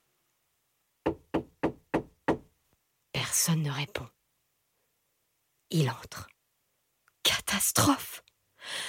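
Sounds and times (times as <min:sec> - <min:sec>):
sharp knocks on a door: 0:01.0 - 0:02.5
speech: 0:03.4 - 0:04.2, 0:05.7 - 0:06.3, 0:07.5 - 0:08.8.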